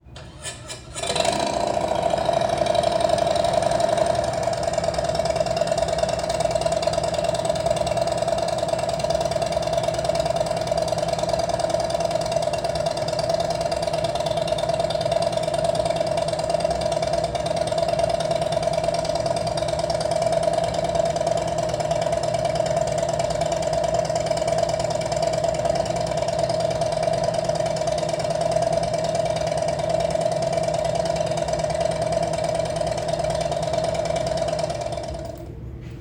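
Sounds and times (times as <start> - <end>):
engine idling: 0.0 - 35.7.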